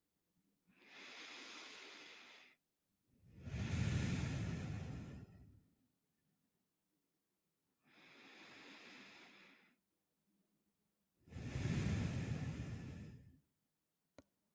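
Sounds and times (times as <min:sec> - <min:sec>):
slow deep breathing close to the microphone: 0:00.7 - 0:02.7, 0:03.3 - 0:05.8, 0:07.8 - 0:09.8, 0:11.2 - 0:13.5.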